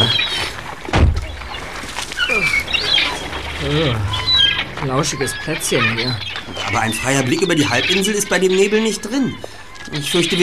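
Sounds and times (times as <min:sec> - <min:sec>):
seagulls crying and squawking: 0:00.0 - 0:10.4
dull thump: 0:00.9 - 0:01.6
speech: 0:03.7 - 0:04.1, 0:04.8 - 0:10.4.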